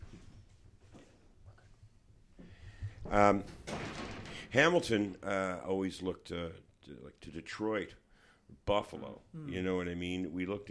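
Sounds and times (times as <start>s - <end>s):
door swinging shut with a thud and rattle: 3.0s - 4.6s
speech: 3.1s - 3.6s, 4.5s - 8.0s, 8.6s - 10.6s.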